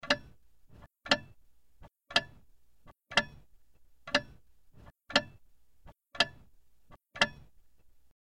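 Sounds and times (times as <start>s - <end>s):
old clock ticking: 0.0s - 0.4s, 1.0s - 1.4s, 2.1s - 2.4s, 3.1s - 3.5s, 4.1s - 4.4s, 5.1s - 5.4s, 6.1s - 6.5s, 7.2s - 7.5s.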